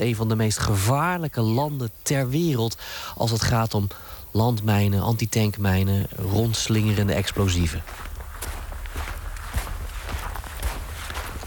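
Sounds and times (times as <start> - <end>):
speech: 0.0 - 8.1
footsteps walking on an unpaved country road in Ukraine: 6.0 - 11.4.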